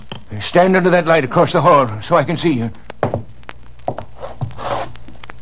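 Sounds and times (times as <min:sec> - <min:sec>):
speech: 0:00.4 - 0:02.8
rustling scrapes of a letter against a door: 0:04.2 - 0:05.0.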